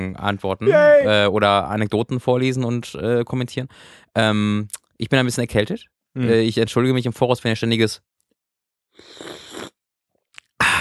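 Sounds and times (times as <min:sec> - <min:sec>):
speech: 0:00.2 - 0:08.1
person slurping hot peppermint tea with honey: 0:09.0 - 0:10.5.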